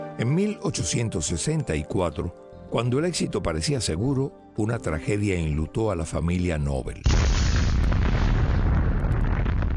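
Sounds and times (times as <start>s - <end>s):
speech: 0.2s - 7.5s
massive explosion tearing through a nitroglycerin factory: 7.1s - 9.7s.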